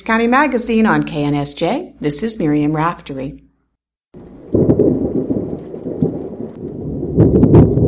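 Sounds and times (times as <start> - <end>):
speech: 0.1 - 3.5
steady hiss of rain: 4.2 - 7.3
deep rolling thunder: 4.2 - 7.8.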